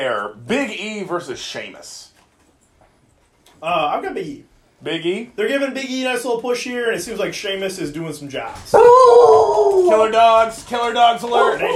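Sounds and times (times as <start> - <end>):
speech: 0.0 - 2.1, 3.6 - 11.7
dogs howling: 8.7 - 10.2, 11.2 - 11.7.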